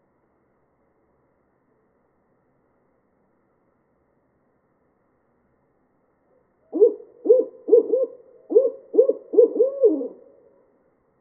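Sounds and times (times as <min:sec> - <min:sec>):
barred owl hooting: 0:06.7 - 0:10.6.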